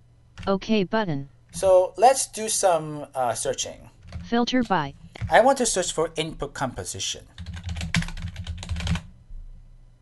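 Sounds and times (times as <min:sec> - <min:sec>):
speech: 0:00.4 - 0:07.3
typing on a computer keyboard: 0:07.4 - 0:09.0.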